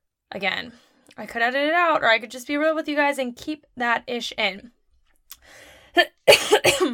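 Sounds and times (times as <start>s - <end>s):
speech: 0.3s - 4.8s, 5.4s - 6.9s
person breathing in softly: 5.4s - 6.0s
loud harsh coughing: 6.0s - 6.9s.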